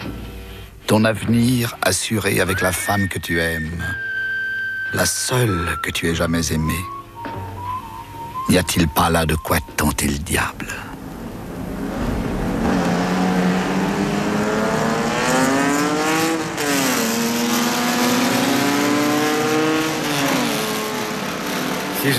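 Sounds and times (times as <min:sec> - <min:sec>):
speech: 0:00.9 - 0:04.1, 0:04.9 - 0:07.0, 0:08.5 - 0:10.9
race car engine roaring and revving through gear changes: 0:11.0 - 0:22.1.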